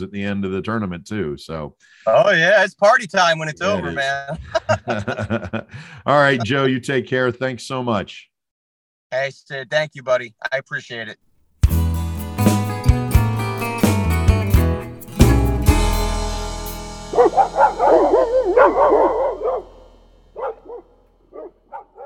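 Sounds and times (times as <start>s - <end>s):
speech: 0.0s - 8.3s, 9.1s - 11.3s
laughter: 3.6s - 5.8s
short burst of music: 11.6s - 20.8s
hound dogs barking and baying in howl-like calls: 17.1s - 22.0s
dog yips: 17.2s - 19.6s, 20.4s - 20.8s, 21.4s - 22.0s.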